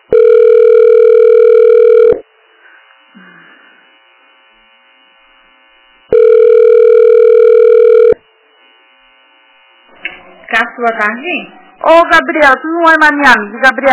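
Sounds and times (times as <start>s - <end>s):
telephone line tone while waiting on hold: 0.0s - 2.2s, 6.1s - 8.2s
speech: 10.8s - 13.9s.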